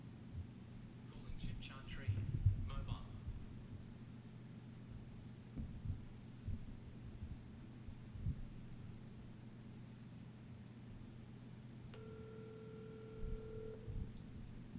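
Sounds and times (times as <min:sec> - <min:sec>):
faint static: 0:00.0 - 0:14.7
low constant hum: 0:00.0 - 0:14.7
phone ringback tone on a phone line: 0:12.0 - 0:14.0.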